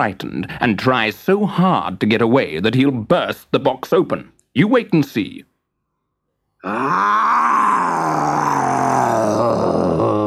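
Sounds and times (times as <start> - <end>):
speech: 0.0 - 5.5, 6.6 - 7.8
long loud lion roar: 6.6 - 10.2.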